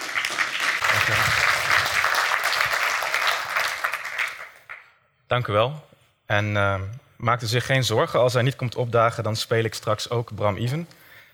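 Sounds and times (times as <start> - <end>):
crowd applauding: 0.0 - 4.9
speech: 1.1 - 1.4, 5.3 - 11.0.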